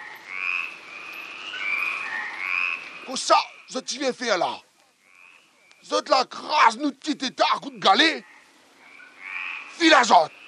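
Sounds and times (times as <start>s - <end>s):
toad croaking in a continuous high trill: 0.0s - 3.8s, 5.0s - 6.6s, 7.8s - 10.4s
faint hiss: 0.0s - 10.4s
speech: 3.1s - 4.7s, 5.8s - 8.3s, 9.8s - 10.4s.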